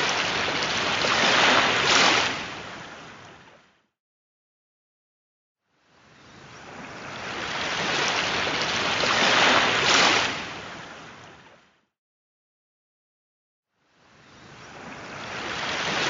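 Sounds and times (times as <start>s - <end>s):
sea waves surging: 0.0s - 3.6s, 6.1s - 11.5s, 14.2s - 16.0s.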